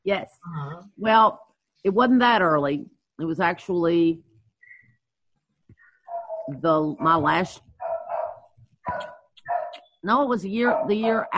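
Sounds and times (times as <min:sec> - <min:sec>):
speech: 0:00.0 - 0:04.3, 0:06.5 - 0:07.7, 0:10.0 - 0:11.3
dog barking and yelping behind a door: 0:06.1 - 0:06.5, 0:07.8 - 0:09.8, 0:10.7 - 0:11.1.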